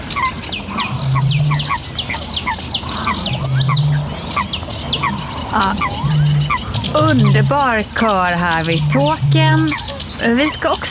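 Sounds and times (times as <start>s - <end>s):
low humming notes: 0.0s - 10.8s
sedge warbler singing: 0.0s - 10.8s
speech: 5.5s - 10.8s.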